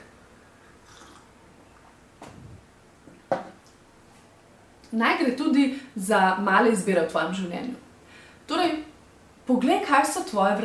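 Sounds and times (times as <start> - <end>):
sip from a drink with a soft slurp and wet gulp: 0.8 - 1.3
speech: 4.9 - 7.8, 8.5 - 8.8, 9.5 - 10.6.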